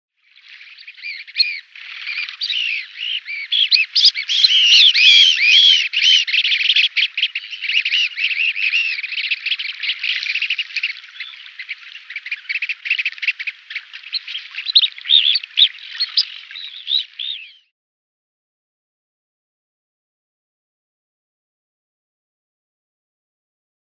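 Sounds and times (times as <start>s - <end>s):
Grey Phalarope display call: 0.5s - 17.7s.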